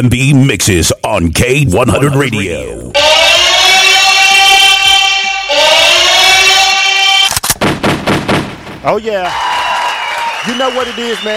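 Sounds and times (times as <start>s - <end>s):
speech: 0.0s - 3.0s, 8.8s - 9.5s, 10.4s - 11.3s
sustained bright electronic tone: 2.9s - 7.3s
gunshots: 7.4s - 9.1s.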